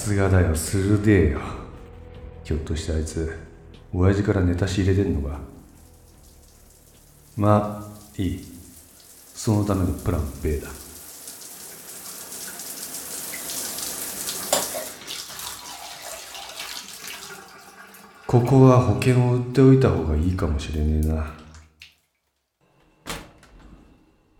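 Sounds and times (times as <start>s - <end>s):
speech: 0.0s - 1.6s, 2.5s - 5.5s, 7.4s - 8.5s, 9.4s - 10.8s, 18.3s - 21.4s
shower water running in a bathroom: 4.7s - 22.0s.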